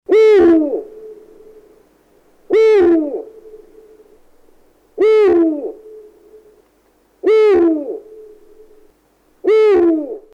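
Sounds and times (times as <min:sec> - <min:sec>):
eagle owl: 0:00.1 - 0:01.7, 0:02.4 - 0:04.2, 0:05.0 - 0:06.6, 0:07.2 - 0:10.3.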